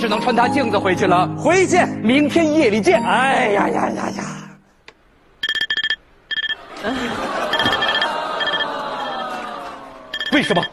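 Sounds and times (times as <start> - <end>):
speech: 0.0 - 4.3, 6.8 - 7.4, 10.3 - 10.7
alarm clock ringing with high-pitched electronic beeping: 5.4 - 6.6, 7.5 - 9.2, 10.1 - 10.7
laughter: 6.6 - 10.6.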